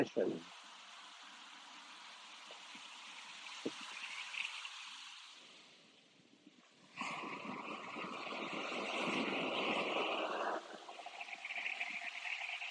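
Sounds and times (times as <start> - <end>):
speech: 0.0 - 0.6
ocean wave breaking on shore: 0.0 - 5.8, 6.8 - 12.6.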